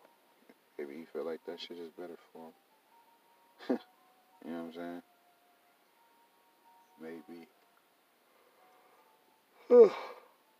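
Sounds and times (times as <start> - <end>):
speech: 0.8 - 2.7, 3.6 - 5.1, 7.0 - 7.6, 9.7 - 10.1
person yawning: 9.6 - 10.3.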